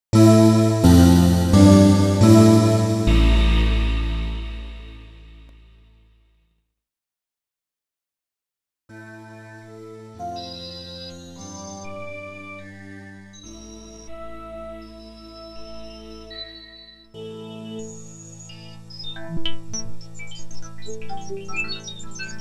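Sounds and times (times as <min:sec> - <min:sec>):
Yamaha EX5R synthesizer water choir patch: 0:00.0 - 0:05.2.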